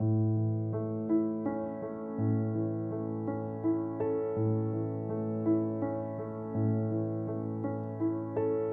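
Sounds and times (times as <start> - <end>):
slow piano loop in 6 8: 0.0 - 8.7.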